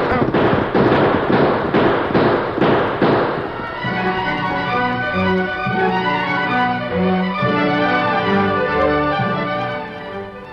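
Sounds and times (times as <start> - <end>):
gunfire in a shootout: 0.0 - 6.4
sustained steady tonal sound: 3.6 - 10.5.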